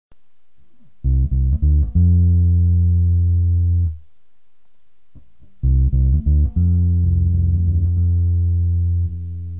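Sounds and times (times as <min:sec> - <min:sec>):
bass with delay effect: 0:01.0 - 0:04.0, 0:05.4 - 0:09.5.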